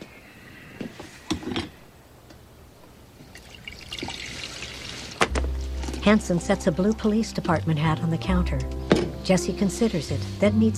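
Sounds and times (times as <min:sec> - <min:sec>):
coffee pouring into a cup in a kitchen: 0:03.2 - 0:05.3
speech: 0:06.1 - 0:10.7.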